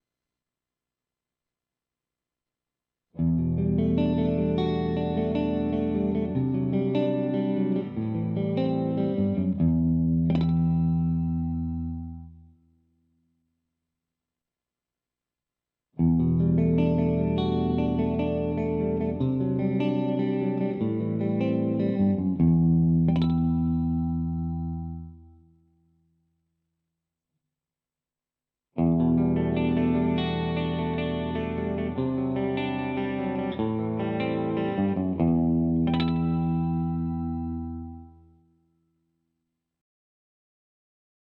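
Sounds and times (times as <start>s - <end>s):
electric guitar with clean split coil humbucker pickup: 3.2s - 12.5s, 16.0s - 25.5s, 28.8s - 38.4s.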